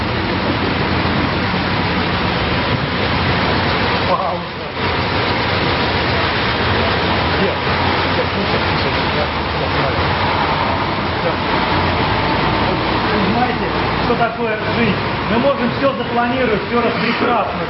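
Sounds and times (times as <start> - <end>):
car engine running: 0.0 - 17.6
speech: 16.2 - 17.6.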